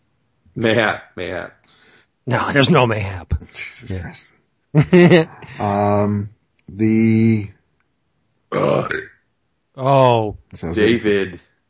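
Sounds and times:
speech: 0.6 - 7.6, 8.5 - 9.1, 9.8 - 11.5
laughter: 4.8 - 6.2
loud deep croaking burps: 8.5 - 9.2.

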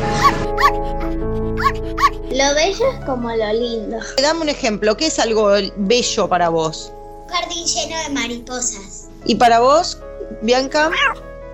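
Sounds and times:
soft sustained music: 0.0 - 11.5
puppy howling yelps, short and high-pitched: 0.1 - 2.2
speech: 2.4 - 11.3.

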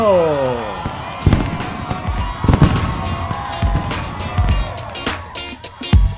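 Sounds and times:
murmur of voices: 0.0 - 6.0
fireworks booming and crackling: 0.7 - 5.4
whistling firework rocket rising: 0.8 - 5.4.

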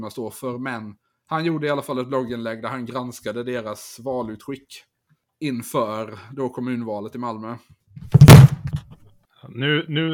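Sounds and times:
speech: 0.0 - 8.3, 9.5 - 10.1
microphone dropping with loud thud: 8.0 - 9.0
small bumps of microphone settling: 8.0 - 9.0.

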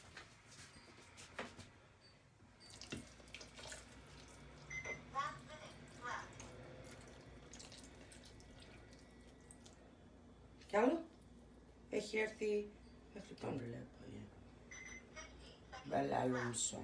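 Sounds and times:
water pouring from a tap into a jar: 2.6 - 4.7, 6.4 - 9.8
speech: 10.8 - 11.0, 12.1 - 14.4, 15.9 - 16.8.

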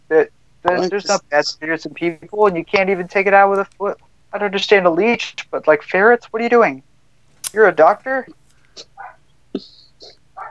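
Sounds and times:
speech: 0.1 - 6.9, 7.5 - 8.9, 9.6 - 10.2
dog barking: 9.0 - 9.2.

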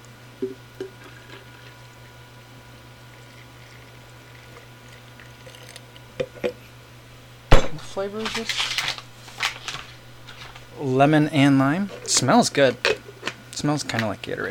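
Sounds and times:
low electrical hum: 0.0 - 14.5
speech: 0.4 - 0.9, 8.0 - 8.7, 10.8 - 12.9, 13.6 - 14.5
water poured and stirred into a thick lemon-and-lime flavored slurry: 3.1 - 6.1.

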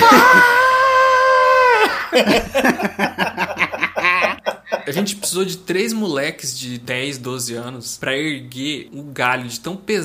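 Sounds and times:
person imitating a man's cartoon-style scream: 0.0 - 2.2
person laughing: 1.7 - 5.3
speech: 2.2 - 3.2, 4.9 - 10.0.

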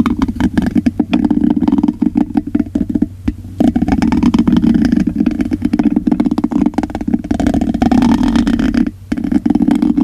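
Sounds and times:
constant muffled low rumble: 0.0 - 10.0
hands rubbing and scratching: 0.0 - 10.0.

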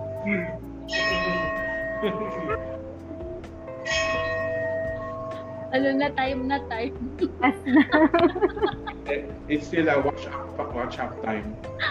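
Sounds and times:
speech: 0.2 - 0.6, 2.0 - 2.8, 5.7 - 11.8
bell ringing: 0.9 - 2.8, 3.8 - 5.8
laughter: 7.6 - 9.3.

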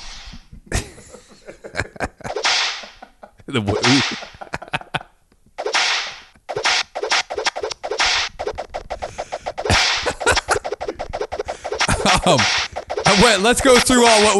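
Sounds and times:
laughter: 0.7 - 5.2, 10.0 - 10.7, 11.8 - 12.5
whip cracks: 2.3 - 2.9, 3.8 - 4.3, 5.6 - 14.3
speech: 3.5 - 4.3, 12.2 - 14.3
whooshing swishes: 5.6 - 14.3.

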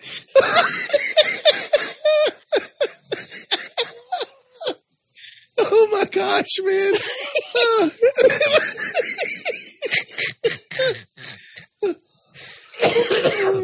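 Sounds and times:
person laughing loudly: 0.3 - 4.4, 6.9 - 11.6
person coughing amid laughter: 0.4 - 4.8, 9.2 - 11.3, 12.7 - 13.6
speech: 6.4 - 9.2.

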